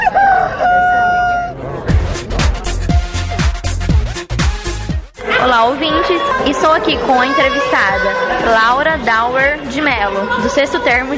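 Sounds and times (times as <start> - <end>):
rooster crowing: 0.0 - 1.6
punchy rhythmic music with steady beats: 1.8 - 11.1
speech: 5.6 - 11.1.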